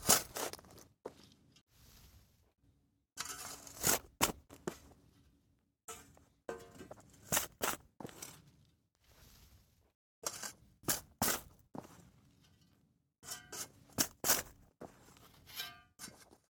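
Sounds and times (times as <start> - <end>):
shovel digging: 0.0 - 0.7, 3.2 - 4.6, 6.0 - 8.4, 10.2 - 11.6, 13.2 - 16.4.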